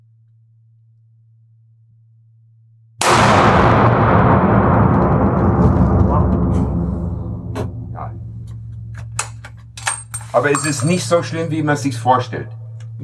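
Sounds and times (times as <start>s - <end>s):
hunting rifle shot: 3.0s - 5.8s
long rumbling echo of a rifle shot: 3.1s - 9.0s
speech: 10.4s - 13.0s.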